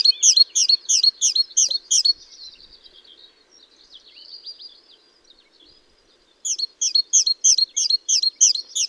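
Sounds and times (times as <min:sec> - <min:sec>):
great tit Parus major calling: 0:00.0 - 0:02.4, 0:06.4 - 0:08.8.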